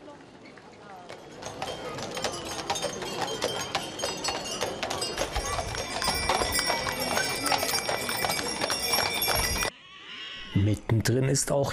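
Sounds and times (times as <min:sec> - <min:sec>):
murmur of voices: 0:00.0 - 0:09.7
faint metallic jingles: 0:00.4 - 0:09.7
many horse hooves clip-clopping on pavement in a horse festival parade: 0:00.5 - 0:09.7
speech: 0:11.2 - 0:11.7.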